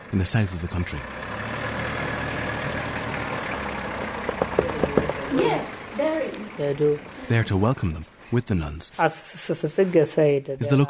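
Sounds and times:
bus engine idling: 0:00.0 - 0:08.4
speech: 0:00.1 - 0:01.4, 0:05.3 - 0:10.8
sharp knocks: 0:04.2 - 0:05.3.

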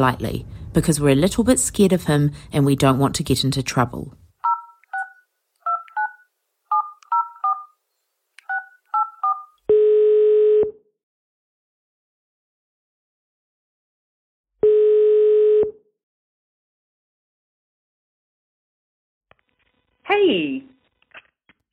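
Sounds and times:
speech: 0:00.0 - 0:04.2, 0:20.1 - 0:20.7
long steady telephone ringing tones: 0:04.4 - 0:07.8, 0:08.5 - 0:10.8, 0:14.6 - 0:15.8
telephone keypad tones dialing a number: 0:04.4 - 0:07.8, 0:08.4 - 0:09.6.

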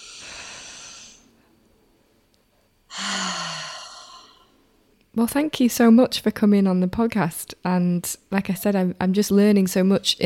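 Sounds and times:
deep breath taken in and out: 0:00.0 - 0:01.6, 0:02.5 - 0:04.6
speech: 0:05.2 - 0:10.2.

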